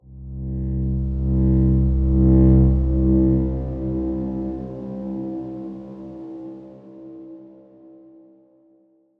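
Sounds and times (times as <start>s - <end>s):
dark swarm-like tone: 0.1s - 7.4s.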